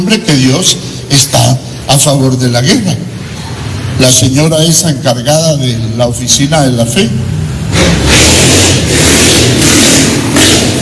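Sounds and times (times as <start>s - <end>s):
speech: 0.0s - 3.2s, 4.0s - 8.0s
motorcycle engine revving: 7.2s - 10.8s.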